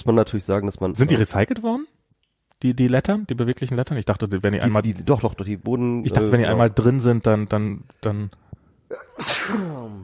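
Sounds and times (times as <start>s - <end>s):
speech: 0.0s - 1.9s, 2.6s - 10.0s
person sneezing after drinking alcohol: 8.9s - 10.0s.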